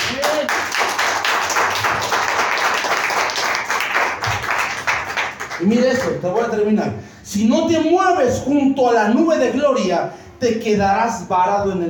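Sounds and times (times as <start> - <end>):
audience applauding: 0.0 - 6.5
speech: 5.6 - 11.8.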